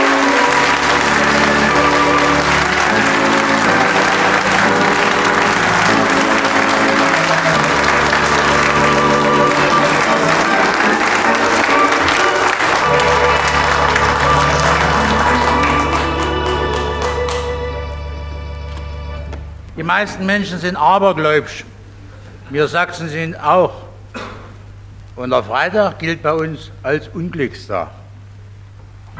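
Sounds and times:
audience applause at a comic recital of Saxon jokes: 0:00.0 - 0:18.1
speech: 0:19.9 - 0:21.7, 0:22.5 - 0:23.9, 0:25.2 - 0:28.0.

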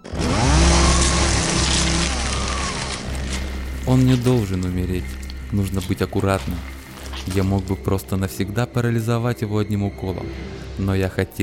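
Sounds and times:
jet saw power tool starting up: 0:00.0 - 0:05.5
speech: 0:03.9 - 0:11.4.

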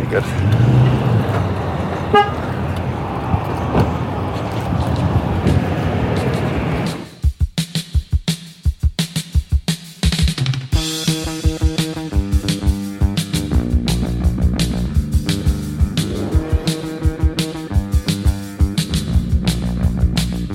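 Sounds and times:
pickup trucks driving past on a road: 0:00.0 - 0:07.2
speech: 0:00.1 - 0:00.8
short horn toot: 0:02.1 - 0:02.6
rhythmic thumps: 0:05.4 - 0:20.5.

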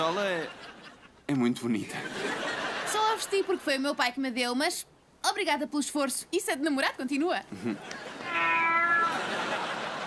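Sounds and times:
speech: 0:00.0 - 0:00.7, 0:01.3 - 0:02.4, 0:03.2 - 0:08.4
laughter: 0:00.0 - 0:01.2, 0:01.9 - 0:03.7, 0:07.5 - 0:08.3, 0:08.9 - 0:10.0
soft hiss: 0:00.0 - 0:10.0
cat meowing: 0:08.2 - 0:09.4.

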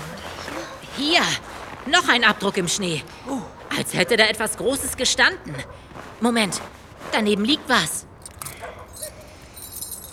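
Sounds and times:
speech: 0:01.0 - 0:08.1
small padlock key jingling as it is picked up from the snow: 0:08.0 - 0:10.1.

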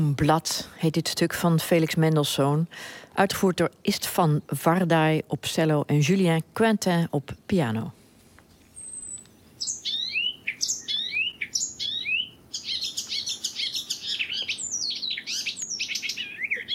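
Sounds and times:
speech: 0:00.0 - 0:08.0
Icterine warbler singing high whistles, descending slurs and harsh chattering notes: 0:08.6 - 0:16.7.

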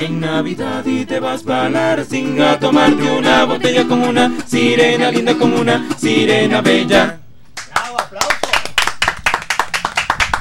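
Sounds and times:
speech: 0:00.0 - 0:07.2
audience applause after a song by a music quintet: 0:07.8 - 0:10.3.

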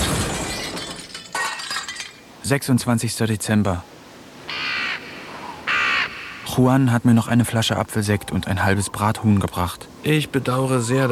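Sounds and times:
crashing debris from a smashed television: 0:00.0 - 0:02.3
television thrown out of a window smashing: 0:00.0 - 0:02.3
speech: 0:02.4 - 0:04.0, 0:06.6 - 0:11.1.

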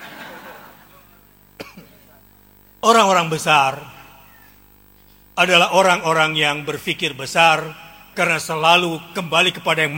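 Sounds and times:
laughter: 0:00.0 - 0:01.3
cough: 0:01.6 - 0:02.1
speech: 0:02.8 - 0:04.0, 0:05.4 - 0:09.9.

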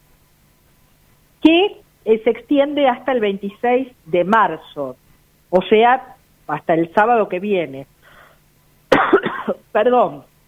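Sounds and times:
speech: 0:01.5 - 0:07.9, 0:09.5 - 0:10.3
person with a persistent recent cough coughing harshly: 0:08.9 - 0:09.6.

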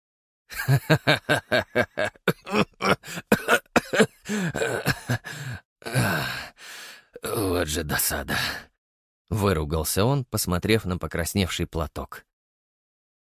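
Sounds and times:
speech: 0:00.5 - 0:03.2, 0:07.7 - 0:08.7, 0:09.3 - 0:12.3
man laughing heartily: 0:00.5 - 0:06.4
man coughing after laughing: 0:00.9 - 0:06.4.

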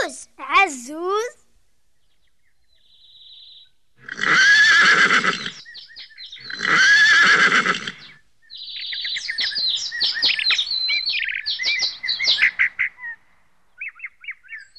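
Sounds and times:
birds chirping and twittering: 0:00.0 - 0:14.7
speech: 0:00.1 - 0:01.4
horse neighing in quavering whinnies: 0:04.0 - 0:05.6, 0:06.4 - 0:08.1.

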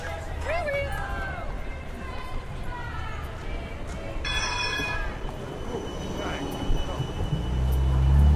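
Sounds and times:
tram passing at a tram stop on a city square: 0:00.0 - 0:08.3.

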